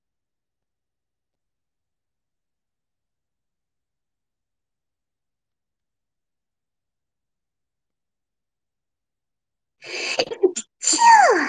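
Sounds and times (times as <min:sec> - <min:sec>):
drawn-out sneeze with breathy catches and vocal whine: 0:09.9 - 0:11.4.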